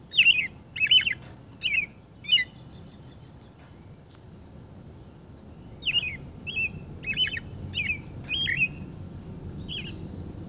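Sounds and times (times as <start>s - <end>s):
robin singing slurred whistled phrases: 0.0s - 3.5s, 5.5s - 8.9s, 9.6s - 10.4s.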